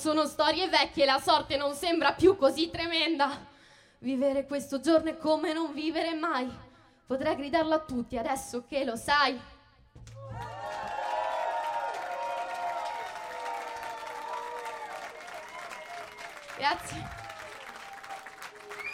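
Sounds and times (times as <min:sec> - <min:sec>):
speech: 0:00.0 - 0:10.4, 0:16.6 - 0:17.2
crowd applauding: 0:10.0 - 0:18.9
crowd cheers and whoops: 0:10.2 - 0:18.9.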